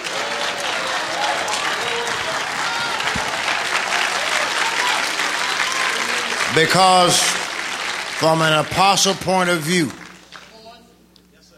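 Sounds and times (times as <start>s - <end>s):
large audience applause: 0.0s - 10.5s
speech: 6.6s - 7.4s, 8.2s - 10.0s.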